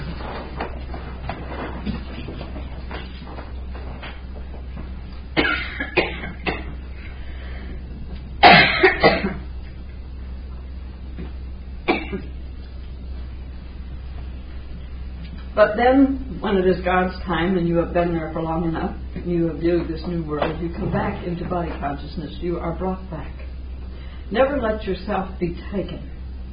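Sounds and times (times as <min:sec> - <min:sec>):
quiet hum: 0:00.0 - 0:26.5
person coughing sharply: 0:05.4 - 0:06.7, 0:08.4 - 0:09.5, 0:11.9 - 0:12.3
speech: 0:15.6 - 0:23.4, 0:24.3 - 0:26.1.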